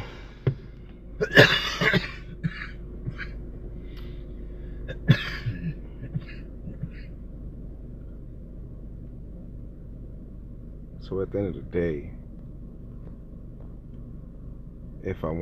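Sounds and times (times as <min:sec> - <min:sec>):
person coughing harshly after smoking: 0:01.2 - 0:03.4, 0:04.9 - 0:07.2
quiet breaths: 0:03.7 - 0:04.9
speech: 0:11.2 - 0:12.2, 0:15.0 - 0:15.4.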